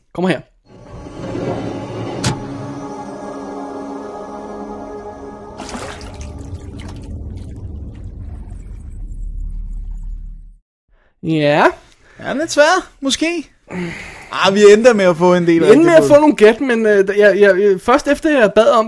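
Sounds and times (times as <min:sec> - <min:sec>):
speech: 0:00.2 - 0:00.5, 0:11.2 - 0:18.8
sharp splash-like hit: 0:05.6 - 0:09.0
murky bubbling rumble of water tentacle rising out of water: 0:05.6 - 0:10.6.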